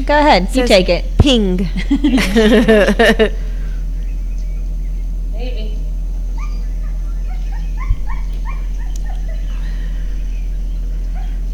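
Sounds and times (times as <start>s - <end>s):
speech: 0.0s - 3.5s
low hum: 0.0s - 11.5s
laughter: 1.3s - 3.7s
dog barking: 6.3s - 10.0s, 10.7s - 11.5s
dog whimpering and yipping: 6.4s - 9.7s.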